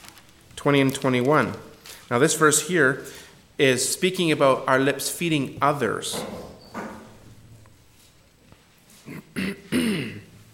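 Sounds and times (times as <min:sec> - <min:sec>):
speech: 0:00.6 - 0:06.5
person clearing a hoarse froggy throat: 0:09.0 - 0:10.4.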